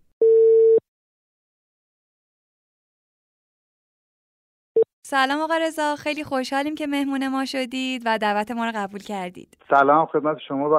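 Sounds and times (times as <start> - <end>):
electronic telephone ringback tone as a call is placed to a truck driver: 0.2 - 0.8
speech: 5.1 - 10.7.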